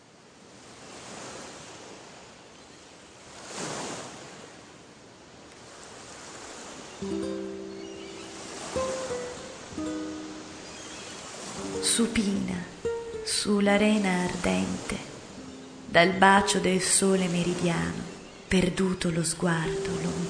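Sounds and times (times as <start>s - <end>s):
sea surf waves breaking on shore: 0.0s - 20.2s
speech: 7.0s - 7.3s, 12.0s - 12.7s, 13.3s - 15.1s, 15.9s - 20.2s
faint sustained tones: 7.0s - 14.5s, 15.3s - 20.2s.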